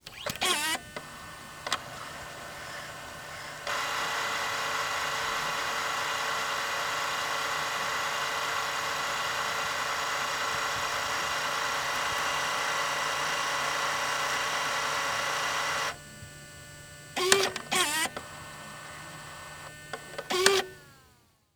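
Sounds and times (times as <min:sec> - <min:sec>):
Panasonic DVX100 camcorder fast forwarding the tape: 0:00.0 - 0:21.2.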